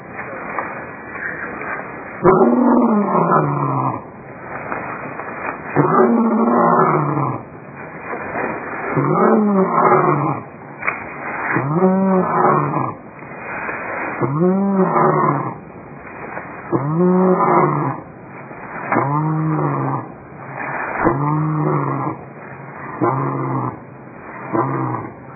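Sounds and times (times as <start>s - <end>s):
speech: 2.2s - 4.1s
lion roaring in low resonant grunts: 2.2s - 4.2s, 5.7s - 7.5s, 8.2s - 10.5s, 11.4s - 13.0s, 13.7s - 15.6s, 16.6s - 18.1s, 18.8s - 25.3s.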